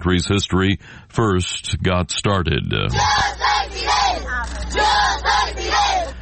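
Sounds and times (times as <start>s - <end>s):
speech: 0.0s - 4.0s
steady low hum of outdoor noise: 0.0s - 6.2s
crowd of children shouting a rhythmic chant in a street in Santiago de Cuba: 2.9s - 6.2s.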